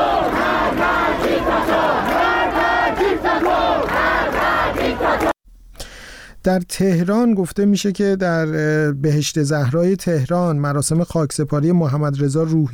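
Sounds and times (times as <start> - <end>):
student protesters at a university dormitory sit-in chanting a slogan: 0.0 - 5.4
speech: 6.4 - 12.7.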